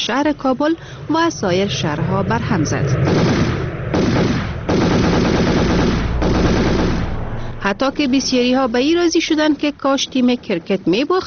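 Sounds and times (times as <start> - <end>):
speech: 0.0 - 3.5, 7.6 - 11.2
celebratory machine gun fire in Kabul for a cricket team victory: 3.0 - 7.3.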